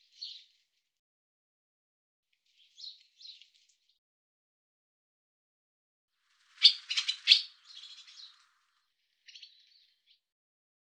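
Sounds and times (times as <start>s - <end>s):
barn swallow chirps and rapid harsh twittering: 6.4s - 10.2s.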